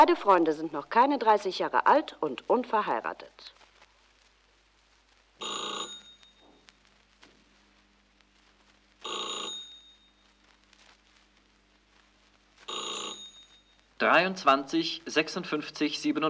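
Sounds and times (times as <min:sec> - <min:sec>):
speech: 0:00.0 - 0:03.6, 0:05.4 - 0:06.0, 0:14.0 - 0:16.2
telephone bell ringing for an incoming long-distance call: 0:05.4 - 0:06.6, 0:09.0 - 0:10.2, 0:12.7 - 0:14.4.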